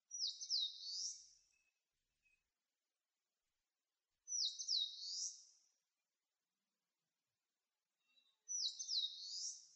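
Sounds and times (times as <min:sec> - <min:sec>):
Eastern crowned warbler singing: 0:00.1 - 0:02.4, 0:04.3 - 0:05.5, 0:08.0 - 0:09.7.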